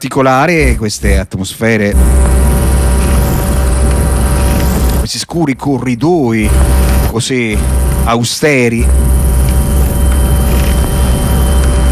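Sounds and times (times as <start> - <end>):
speech: 0.0 - 3.3, 5.1 - 9.4
drone played on an Indian shruti box: 1.9 - 5.1, 6.4 - 8.2, 8.8 - 11.9.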